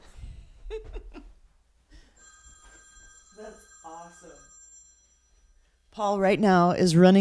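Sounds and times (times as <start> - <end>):
phone ringing with incoming call: 2.1 - 5.8
speech: 6.0 - 7.1.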